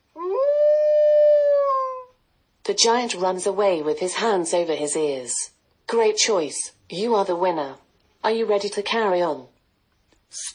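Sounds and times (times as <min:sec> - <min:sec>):
wolf howling: 0:00.2 - 0:02.1
speech: 0:02.7 - 0:09.5, 0:10.3 - 0:10.5.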